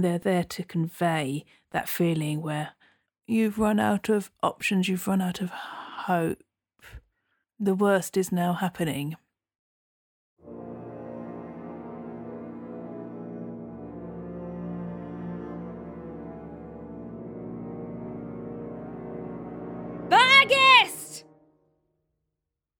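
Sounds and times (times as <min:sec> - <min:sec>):
speech: 0:00.0 - 0:07.0, 0:07.6 - 0:09.2
low dark brass chord from four French horns and a tuba: 0:10.4 - 0:21.7.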